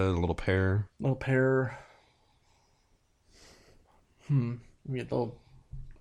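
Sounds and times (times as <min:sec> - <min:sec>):
speech: 0:00.0 - 0:01.9, 0:04.3 - 0:05.9
people sniffing a beer's aroma: 0:03.3 - 0:04.0.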